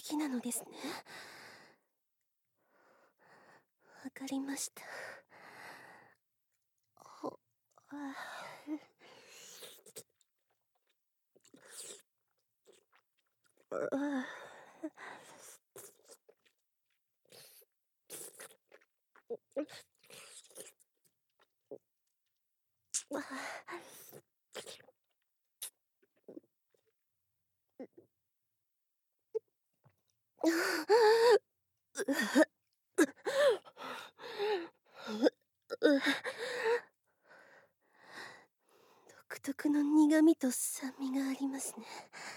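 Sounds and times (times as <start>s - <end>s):
speech: 0.1s - 1.2s, 4.0s - 5.2s, 7.2s - 8.9s, 13.7s - 15.2s, 19.3s - 19.9s, 30.4s - 31.4s, 32.0s - 36.4s, 39.4s - 42.3s
chewing and crunching food: 9.7s - 13.7s, 15.2s - 22.4s.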